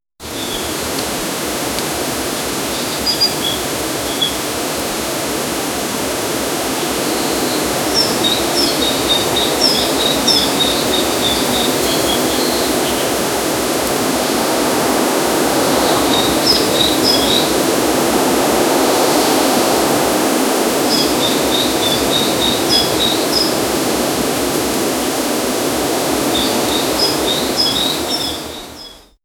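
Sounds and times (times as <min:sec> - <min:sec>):
birds: 0:00.2 - 0:04.8, 0:05.9 - 0:14.0, 0:15.5 - 0:17.8, 0:20.8 - 0:29.2
wind through bamboo: 0:00.2 - 0:29.2.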